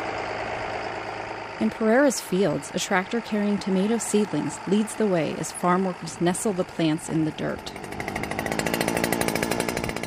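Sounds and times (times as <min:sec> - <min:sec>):
powered drill boring holes into farm soil among tomato plantings: 0:00.0 - 0:10.0
speech: 0:01.6 - 0:08.1.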